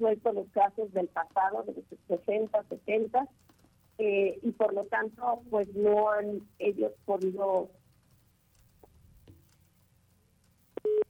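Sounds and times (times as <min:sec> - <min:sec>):
speech: 0:00.0 - 0:03.4, 0:04.0 - 0:07.8
faint low hum: 0:00.0 - 0:11.0
phone busy tone after a dropped call: 0:10.8 - 0:11.0.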